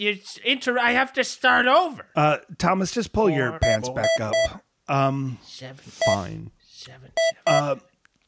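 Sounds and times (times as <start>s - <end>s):
speech: 0.0s - 7.9s
cell phone keypad beeps while dialing: 3.6s - 4.6s, 6.0s - 6.3s, 7.2s - 7.7s.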